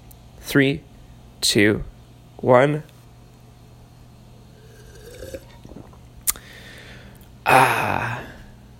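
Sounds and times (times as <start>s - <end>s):
speech: 0.5s - 2.9s, 7.5s - 7.8s
coffee cup clinking: 4.6s - 6.0s
sipping coffee from a cup: 4.6s - 6.4s.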